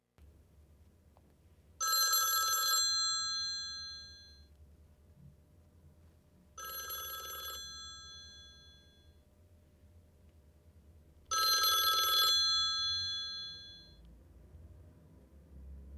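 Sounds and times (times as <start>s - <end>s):
old phone: 1.8s - 4.5s, 6.6s - 9.1s, 11.3s - 14.0s.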